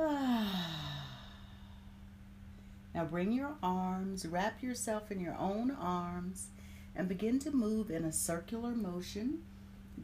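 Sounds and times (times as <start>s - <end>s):
soft drawn-out sigh with voiced tone falling in pitch: 0.0s - 2.9s
deep breath in and out during a slow relaxation exercise: 0.1s - 2.9s
speech: 3.0s - 9.6s.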